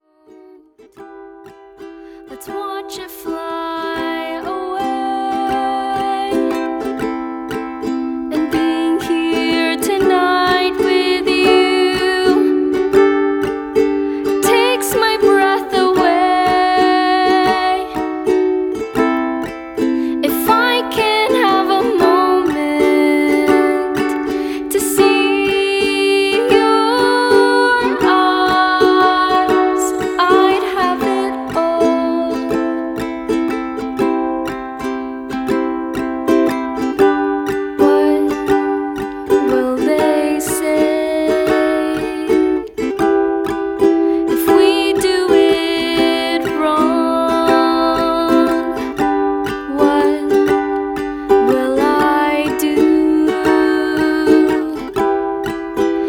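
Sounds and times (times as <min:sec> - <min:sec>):
acoustic indie music: 0:00.1 - 0:56.0.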